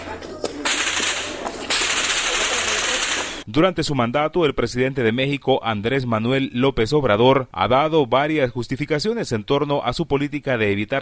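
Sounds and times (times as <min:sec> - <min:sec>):
scattered voices: 0:00.0 - 0:03.4
gunfire bursts during a crossfire: 0:00.6 - 0:03.4
speech: 0:03.5 - 0:11.0.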